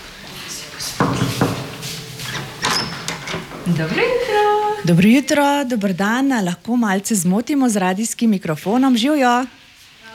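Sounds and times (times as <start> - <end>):
soft hiss: 0.0 - 10.1
rustling movement: 0.3 - 4.4
sharp knocks on a room door: 1.0 - 3.7
speech: 3.7 - 9.6.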